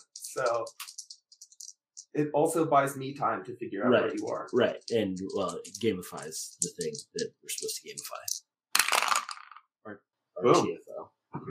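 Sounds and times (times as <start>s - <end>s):
speech: 0.0s - 0.9s, 2.1s - 8.4s, 9.8s - 11.5s
dice rattling and clattering across a hard surface: 0.0s - 2.2s, 3.9s - 9.7s.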